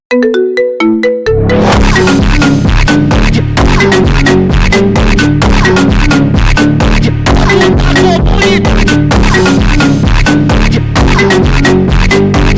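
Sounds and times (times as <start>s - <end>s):
marimba ringtone remix: 0.1s - 12.5s.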